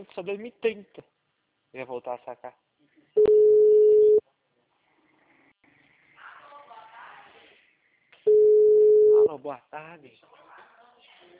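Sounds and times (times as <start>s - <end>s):
speech: 0.0s - 2.7s, 9.3s - 10.4s
telephone busy signal: 3.2s - 4.2s, 8.3s - 9.3s.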